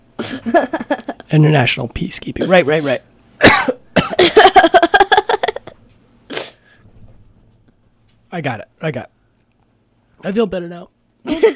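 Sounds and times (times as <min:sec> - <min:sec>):
speech: 0:00.4 - 0:03.1, 0:08.4 - 0:09.2, 0:10.2 - 0:11.5
person coughing: 0:03.4 - 0:04.6.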